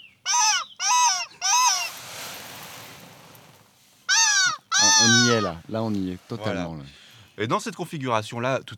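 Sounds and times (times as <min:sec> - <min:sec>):
seaside birds crying: 0:00.0 - 0:02.0, 0:04.1 - 0:05.7
soft rushing wash: 0:01.6 - 0:04.1
speech: 0:05.0 - 0:08.7.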